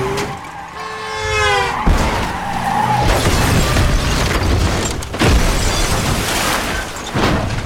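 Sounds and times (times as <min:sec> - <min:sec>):
car skidding during a chase: 0:00.0 - 0:04.8
car crashing off a bridge into water: 0:03.1 - 0:07.6.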